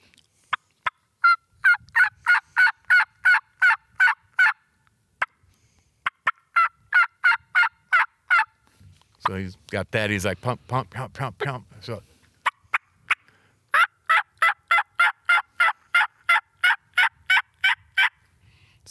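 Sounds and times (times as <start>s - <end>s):
turkey yelps imitated on mouth calls: 1.2s - 4.6s, 6.2s - 8.5s, 12.4s - 18.1s
speech: 9.3s - 12.1s.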